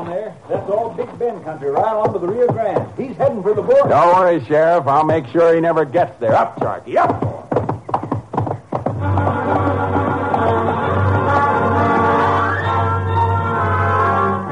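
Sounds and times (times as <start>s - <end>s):
horse hoofbeats galloping: 0.0s - 14.5s
speech: 0.1s - 7.4s
loud sustained musical drone: 9.0s - 14.5s.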